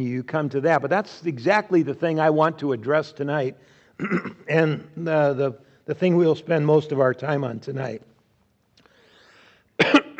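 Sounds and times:
speech: 0.0 - 8.1
person coughing after putting in a cough drop: 4.0 - 4.9, 9.8 - 10.1
throat clearing: 4.0 - 4.9, 9.8 - 10.1.

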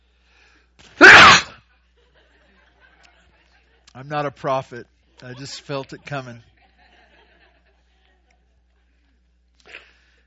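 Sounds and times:
person sneezing: 0.9 - 1.6
laughter: 1.6 - 3.9, 6.4 - 8.8
speech: 4.0 - 6.5.

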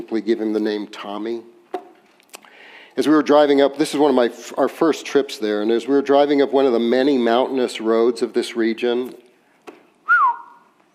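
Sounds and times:
speech: 0.1 - 1.6, 3.0 - 9.2
person whistling into a microphone: 10.1 - 10.7.

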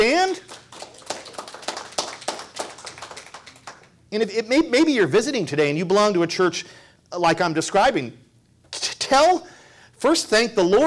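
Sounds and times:
crowd clapping together in a steady rhythm: 0.0 - 4.0
scattered applause: 0.4 - 3.9
speech: 4.1 - 8.2, 9.1 - 10.8.

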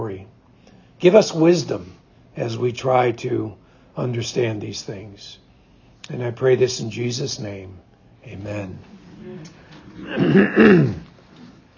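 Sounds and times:
speech: 1.0 - 5.4, 6.1 - 11.1
morning cough with rough throaty throat clearing: 9.2 - 11.1.

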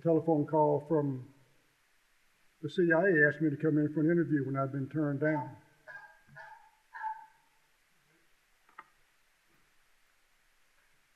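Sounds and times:
speech: 0.0 - 1.3, 2.6 - 5.6
dog barking: 5.9 - 7.5.

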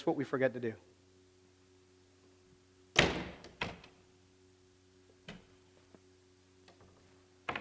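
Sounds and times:
speech: 0.0 - 1.0
faint steady hum: 0.0 - 7.5
door being pushed shut with a thud: 2.9 - 3.8.

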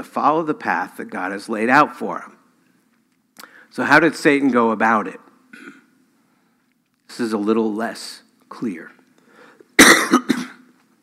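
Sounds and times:
speech: 0.0 - 2.4, 3.4 - 5.8, 7.1 - 9.0
harsh loud cough: 5.5 - 5.9, 9.8 - 10.7.

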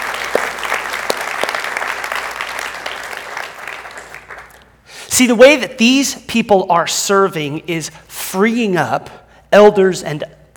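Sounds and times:
audience applauding: 0.0 - 4.7
sharper individual claps: 0.0 - 4.7
speech: 5.2 - 10.4.

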